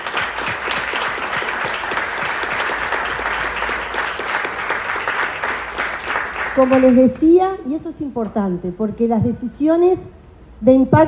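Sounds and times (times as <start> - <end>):
sizable audience applauding: 0.0 - 7.2
speech: 6.6 - 11.0.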